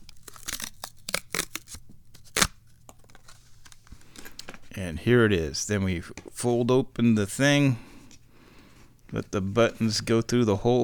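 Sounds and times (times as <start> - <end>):
small product package being ripped open: 0.0 - 3.8
speech: 4.8 - 7.9, 9.1 - 10.8.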